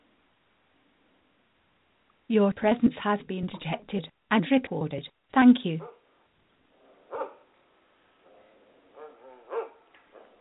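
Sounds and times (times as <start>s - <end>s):
speech: 2.3s - 6.0s
dog barking: 5.8s - 6.1s, 6.8s - 7.5s, 8.3s - 10.3s.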